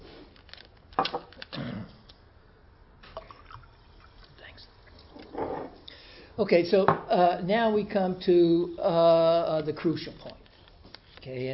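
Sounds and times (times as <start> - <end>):
water pouring into a glass: 3.1 - 4.3
speech: 6.4 - 10.4, 11.2 - 11.5.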